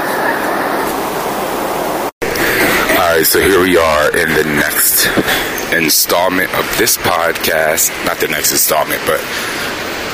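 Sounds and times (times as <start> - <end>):
airplane cabin roar in flight: 0.0 - 10.1
speech: 3.3 - 9.9.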